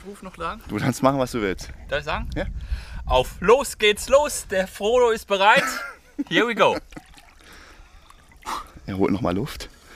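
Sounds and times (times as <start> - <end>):
speech: 0.0 - 7.0, 8.5 - 9.8
water trickling and lapping in a pool: 6.2 - 9.9.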